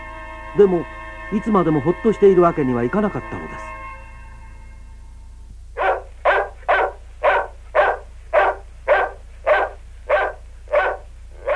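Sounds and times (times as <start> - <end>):
low steady hum: 0.0 - 11.5
speech: 0.5 - 3.8
dog barking frantically: 5.8 - 11.5.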